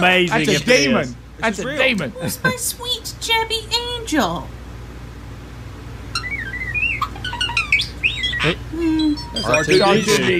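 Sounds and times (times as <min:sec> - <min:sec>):
speech: 0:00.0 - 0:04.6, 0:08.4 - 0:10.3
dense burst of chirps: 0:06.1 - 0:10.3
starling mimicking robot droid noises: 0:06.1 - 0:10.3.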